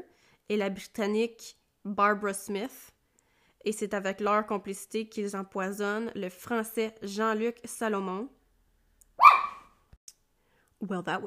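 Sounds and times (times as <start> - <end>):
speech: 0.5 - 3.0, 3.6 - 8.4, 10.8 - 11.2
dog barking: 9.2 - 9.7.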